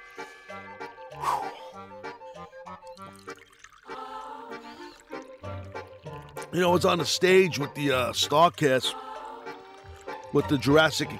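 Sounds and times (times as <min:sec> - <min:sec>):
water poured for a drink glugging and splashing: 0:02.8 - 0:07.2, 0:09.5 - 0:11.1
speech: 0:06.5 - 0:09.0, 0:10.3 - 0:11.1.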